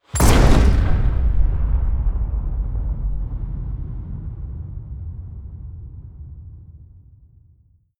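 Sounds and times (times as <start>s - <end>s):
shotgun fire with huge reverb: 0.1s - 4.2s.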